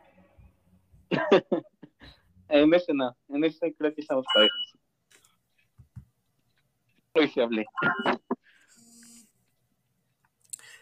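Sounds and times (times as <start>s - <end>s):
laughter: 1.1s - 2.0s
speech: 1.2s - 1.7s, 2.5s - 4.6s, 7.3s - 8.3s
WhatsApp notification chime on computer: 4.3s - 4.7s.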